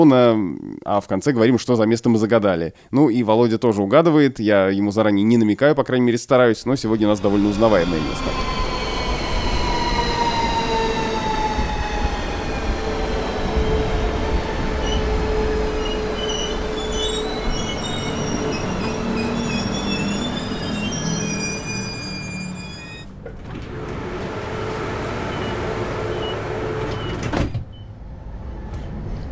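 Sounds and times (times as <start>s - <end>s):
speech: 0.0s - 8.6s
train rumbling: 6.7s - 29.3s
train wheels squealing on rails: 6.9s - 27.2s.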